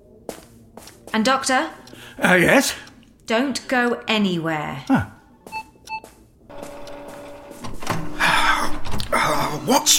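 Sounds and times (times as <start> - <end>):
speech: 0.8 - 5.2, 9.7 - 9.9
electronic beeps: 5.5 - 6.8
malfunctioning printer whirring and grinding: 6.5 - 8.4.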